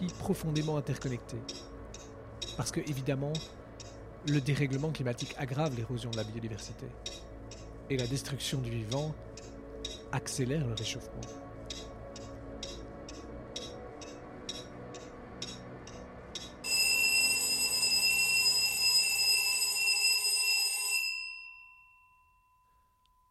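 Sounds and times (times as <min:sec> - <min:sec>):
speech: 0:00.0 - 0:01.7, 0:02.6 - 0:03.6, 0:04.2 - 0:07.1, 0:07.9 - 0:09.3, 0:10.1 - 0:11.5
alarm clock beeping at wake-up: 0:00.0 - 0:08.3, 0:10.8 - 0:22.6
alarm clock metallic bell ringing at wake-up: 0:16.4 - 0:23.0.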